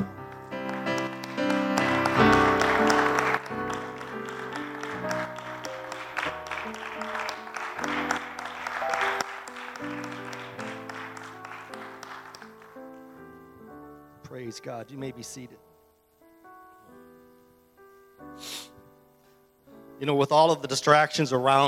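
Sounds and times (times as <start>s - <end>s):
congregation clapping hands during a church service: 0.0s - 13.2s
speech: 14.6s - 15.7s, 20.0s - 21.6s.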